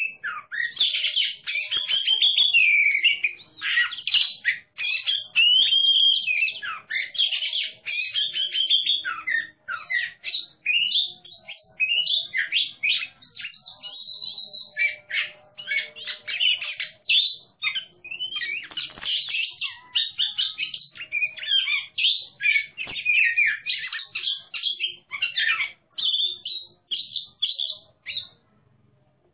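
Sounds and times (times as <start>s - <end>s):
Oriental magpie-robin competition song of varied whistles, chirps and warbled phrases: 0.0s - 28.4s.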